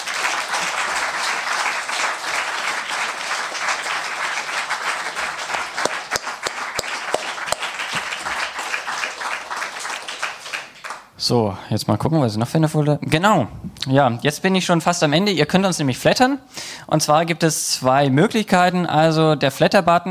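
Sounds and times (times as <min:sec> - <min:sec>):
room full of people applauding: 0:00.0 - 0:11.1
speech: 0:11.3 - 0:20.0.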